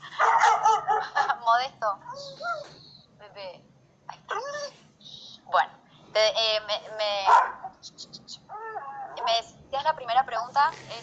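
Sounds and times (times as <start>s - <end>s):
dog barking and yelping: 0.1s - 1.4s, 7.2s - 7.8s, 8.5s - 9.5s
speech: 1.6s - 4.8s, 5.5s - 8.3s, 9.3s - 11.0s.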